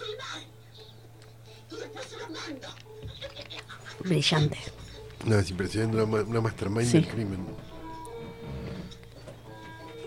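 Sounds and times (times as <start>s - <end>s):
laughter: 1.6s - 5.1s
speech: 4.0s - 7.7s
armchair creaking under someone's shifting weight: 4.8s - 10.0s
soft squeaks and rustles: 7.1s - 10.0s.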